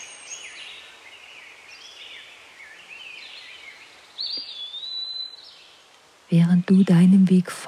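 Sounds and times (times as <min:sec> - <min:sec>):
whistled bird song: 0:00.0 - 0:05.8
birds chirping and twittering in a forest: 0:00.0 - 0:07.6
speech: 0:06.3 - 0:07.6.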